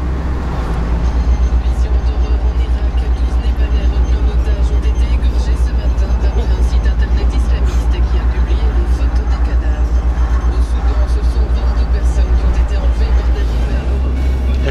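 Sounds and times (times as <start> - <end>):
truck carrying frozen fries driving along the road: 0.0 - 14.6
voices: 0.0 - 14.6.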